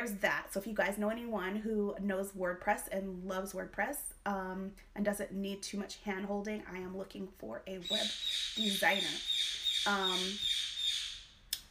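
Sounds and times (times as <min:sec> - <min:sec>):
speech: 0:00.0 - 0:10.5
pet bird squawking: 0:07.9 - 0:11.4.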